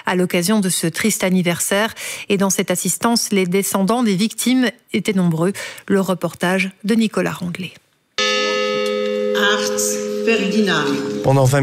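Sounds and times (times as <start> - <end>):
speech: 0.1 - 7.8, 9.4 - 11.6
memorial bell tolling at a commemoration for victims: 8.2 - 11.6.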